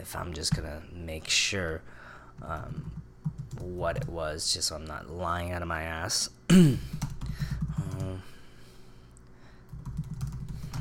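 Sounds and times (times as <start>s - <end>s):
speech: 0.0s - 7.1s
low hum: 0.0s - 10.8s
typing on a computer keyboard: 2.4s - 4.1s, 6.9s - 8.1s, 9.7s - 10.8s.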